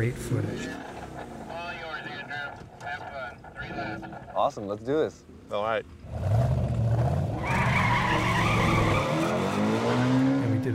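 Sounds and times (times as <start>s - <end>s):
speech: 0.0s - 0.9s, 4.0s - 6.2s
car engine roaring at high speed around a track: 0.0s - 10.7s
high-pitched whine or tire squeal: 7.4s - 9.7s.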